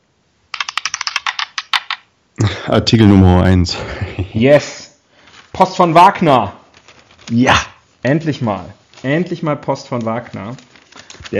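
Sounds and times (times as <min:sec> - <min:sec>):
dice clattering across a hard surface: 0:00.5 - 0:02.0
speech: 0:02.6 - 0:04.8, 0:05.6 - 0:06.6, 0:07.3 - 0:10.7.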